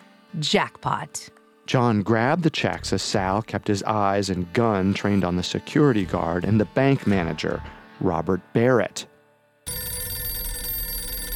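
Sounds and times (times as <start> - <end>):
speech: 0.3 - 9.1
desk telephone ringing with bright bell in a bank: 9.7 - 11.3.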